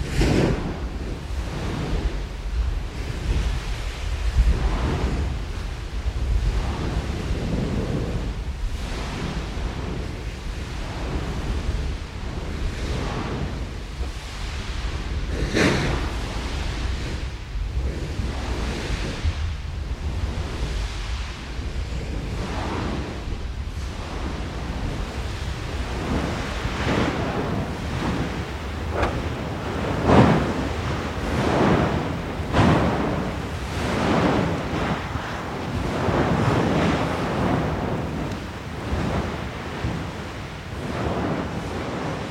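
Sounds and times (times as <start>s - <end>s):
rushing surf-like churning of lava lake: 0.0s - 42.3s
wind buffeting the microphone: 0.0s - 42.3s
Erta Ale volcano lava lake deep roar: 24.0s - 42.3s.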